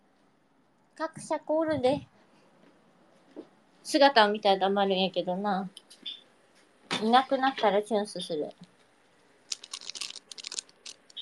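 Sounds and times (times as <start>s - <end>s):
speech: 1.0s - 2.1s, 3.4s - 6.0s, 7.0s - 8.7s
plastic bag of aonori seaweed rustling at the microphone: 9.4s - 11.2s.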